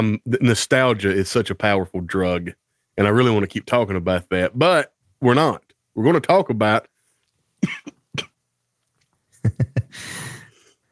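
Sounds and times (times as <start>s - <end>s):
speech: 0.0s - 6.9s, 7.6s - 8.3s
person coughing with raspy breathy exhale: 7.6s - 8.4s.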